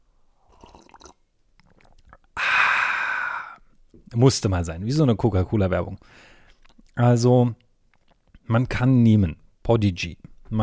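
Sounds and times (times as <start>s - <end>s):
person slurping coffee: 0.4s - 3.8s
loud breathy exhale: 2.4s - 3.6s
speech: 4.0s - 6.3s, 7.0s - 7.6s, 8.5s - 10.6s.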